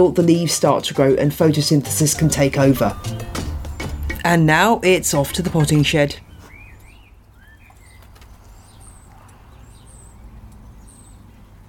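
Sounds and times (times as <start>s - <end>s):
speech: 0.0s - 3.4s, 4.2s - 6.2s
birds singing and chirping outdoors on a spring day: 2.4s - 11.6s.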